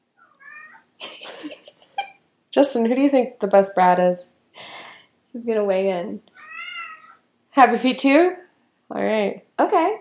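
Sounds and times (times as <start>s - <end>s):
cat meowing: 0.2s - 0.9s, 6.3s - 7.2s
speech: 2.6s - 4.4s, 5.4s - 6.3s, 7.6s - 9.9s.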